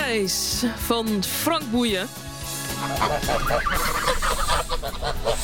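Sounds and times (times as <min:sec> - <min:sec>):
speech: 0:00.1 - 0:02.3, 0:02.8 - 0:05.4
flock of geese honking: 0:02.6 - 0:05.4.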